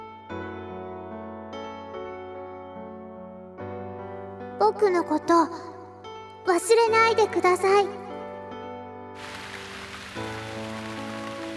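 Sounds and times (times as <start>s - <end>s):
speech: 4.7s - 5.7s, 6.4s - 8.0s
heavy rain pouring down: 9.2s - 11.5s
sustained droning musical tones: 9.2s - 11.5s.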